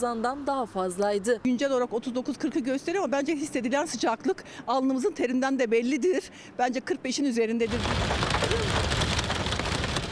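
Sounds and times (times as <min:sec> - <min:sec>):
speech: 0:00.0 - 0:09.0
hailstones striking surfaces in Ardahan: 0:07.7 - 0:10.1
heavy rain in Ardahan: 0:07.7 - 0:10.1.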